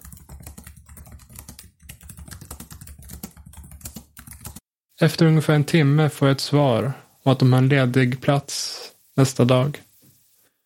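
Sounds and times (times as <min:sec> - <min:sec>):
typing on a computer keyboard: 0:00.0 - 0:04.6
speech: 0:05.0 - 0:09.8.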